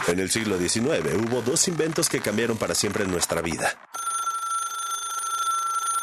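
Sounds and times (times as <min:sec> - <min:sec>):
speech: 0:00.2 - 0:03.9
telephone bell ringing: 0:04.0 - 0:06.0.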